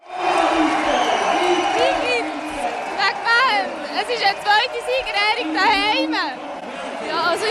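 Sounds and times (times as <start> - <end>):
large indoor crowd roaring and chattering in a gym hall: 0.0 - 7.4.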